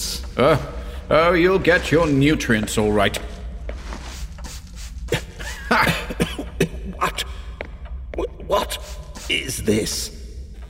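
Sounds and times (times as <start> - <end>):
speech: 0.4 - 3.3, 9.7 - 10.2
person coughing and spluttering: 5.1 - 7.4.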